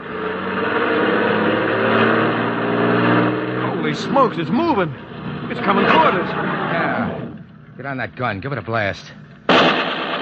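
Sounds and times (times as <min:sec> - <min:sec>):
truck engine revving as it pulls forward: 0:00.0 - 0:07.8
speech: 0:04.0 - 0:07.2, 0:07.8 - 0:09.8.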